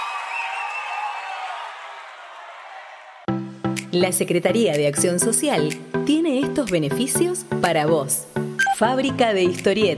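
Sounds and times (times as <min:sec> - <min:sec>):
crowd applauding: 0:00.0 - 0:03.3
speech: 0:03.9 - 0:09.9.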